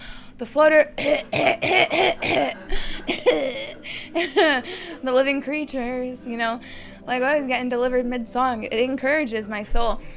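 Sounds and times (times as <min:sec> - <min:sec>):
speech: 0:00.4 - 0:02.7, 0:03.3 - 0:10.1
woman coughing mid-song: 0:01.0 - 0:04.7.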